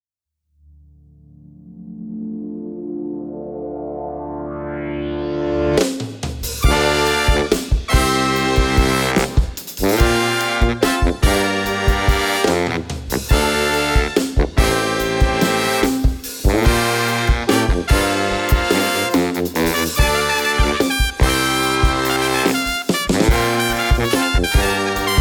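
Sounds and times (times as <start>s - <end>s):
brass band playing: 5.1s - 25.1s.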